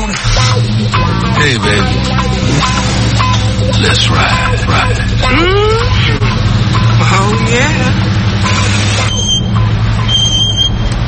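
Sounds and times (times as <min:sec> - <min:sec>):
loud vehicle engine rumble: 0:00.0 - 0:11.0
speech: 0:03.8 - 0:05.6, 0:07.5 - 0:08.1
noisy car brakes with high-pitched squeals: 0:08.4 - 0:11.0.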